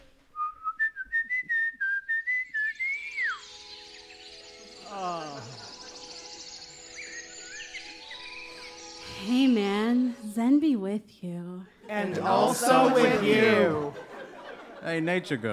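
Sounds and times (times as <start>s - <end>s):
person whistling a bright rising tune: 0.3s - 3.6s
faint ambient hiss: 2.2s - 15.5s
laughter: 4.9s - 5.9s, 11.8s - 15.5s
speech: 12.0s - 14.0s, 14.8s - 15.5s.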